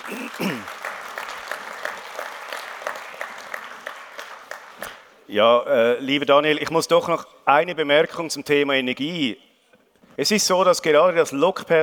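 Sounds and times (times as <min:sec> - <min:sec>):
audience applause after a talk: 0:00.0 - 0:05.1
speech: 0:05.3 - 0:09.5, 0:10.2 - 0:11.8.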